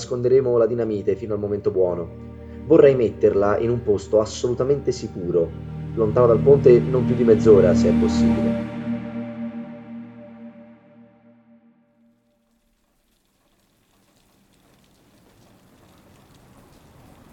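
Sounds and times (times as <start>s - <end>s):
speech: 0.0s - 8.7s
sustained musical chord: 0.0s - 12.1s
steady rain falling: 12.4s - 17.3s.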